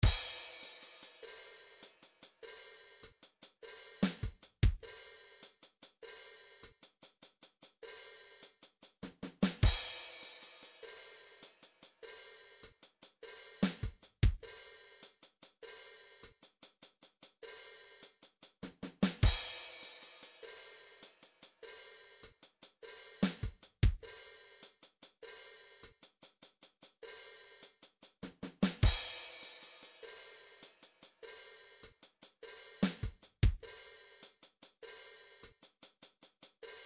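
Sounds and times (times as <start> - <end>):
MIDI swing drums: 0.0 - 5.5, 8.8 - 10.8, 13.6 - 14.6, 18.5 - 20.4, 23.2 - 24.1, 28.1 - 30.0, 32.7 - 33.9.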